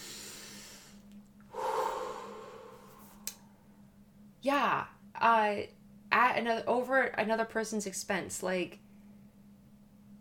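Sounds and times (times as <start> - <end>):
deep breathing: 0.0 - 3.6
speech: 4.4 - 8.8.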